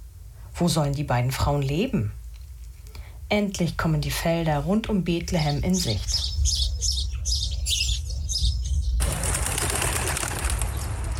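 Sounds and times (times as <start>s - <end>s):
speech: 0.6s - 2.2s, 3.3s - 6.8s
flock of birds chirping over harvest fields near Bethlehem: 4.6s - 11.1s
flock of birds flapping many wings: 9.0s - 11.1s.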